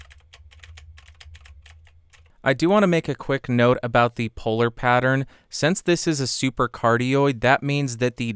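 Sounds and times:
clicky mechanical keyboard typing with blue switches: 0.0s - 2.3s
steady low hum: 0.0s - 5.5s
speech: 2.4s - 8.3s.

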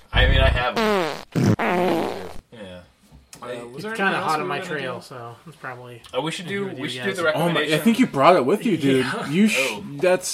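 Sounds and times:
fart noises: 0.2s - 2.5s
speech: 3.8s - 10.3s.

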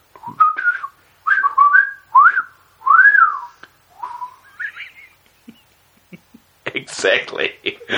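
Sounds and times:
person whistling warbling calls imitating birds: 0.2s - 5.2s
person laughing: 4.5s - 7.0s, 7.6s - 7.9s
speech: 7.0s - 7.9s.

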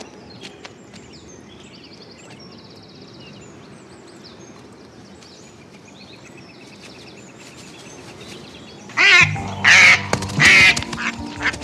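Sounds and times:
low steady tone: 0.0s - 11.6s
two wild ducks quacking in a pool during mating season: 8.8s - 11.6s.

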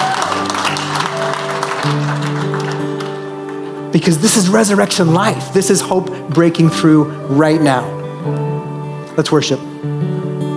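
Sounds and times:
large crowd cheering and clapping: 0.0s - 3.9s
speech: 3.9s - 8.4s, 9.2s - 10.0s.

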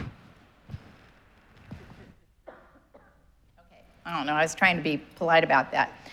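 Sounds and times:
coughs: 1.7s - 3.9s
speech: 4.1s - 6.1s.

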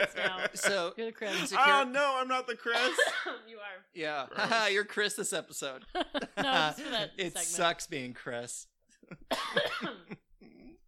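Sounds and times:
laughter: 0.0s - 1.8s, 5.8s - 7.4s
speech: 0.0s - 10.2s
person coughing: 2.8s - 3.4s, 9.3s - 10.8s.

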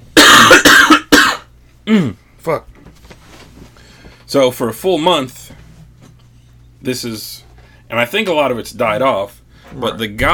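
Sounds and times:
harsh loud coughs: 0.2s - 2.2s
speech: 1.9s - 2.7s, 4.3s - 5.4s, 6.8s - 10.3s.

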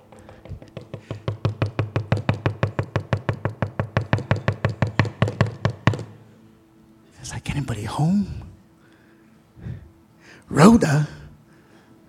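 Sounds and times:
rapid sharp knocking on a door: 0.1s - 6.1s
speech: 7.5s - 8.4s, 10.5s - 11.2s.

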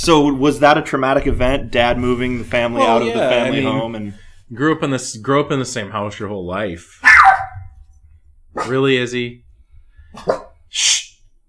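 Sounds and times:
speech: 0.0s - 7.1s, 8.6s - 9.4s, 10.1s - 11.1s
laughter: 2.2s - 4.1s
dog barking gruffly: 7.0s - 7.6s, 10.2s - 10.6s.

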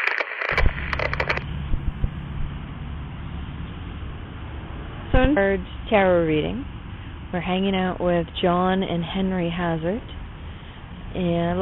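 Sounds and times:
crackling radio static with pops and bursts: 0.0s - 2.5s
low rumbling hum: 0.5s - 11.5s
speech: 5.2s - 10.2s, 11.1s - 11.5s.

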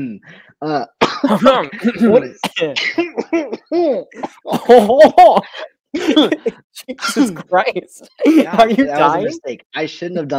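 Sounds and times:
speech: 0.0s - 10.3s
harsh coughing from throat tickle: 1.0s - 7.6s.

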